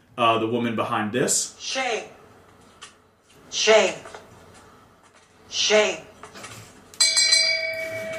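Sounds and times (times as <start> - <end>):
speech: 0.2 - 2.2, 3.5 - 4.2, 5.5 - 6.1
hand bell rung by a woman: 7.0 - 8.1.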